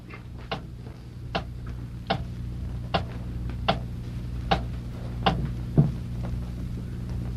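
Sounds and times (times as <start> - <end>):
constant low hum: 0.0 - 7.3
clock ticking: 2.1 - 2.3, 4.5 - 5.4.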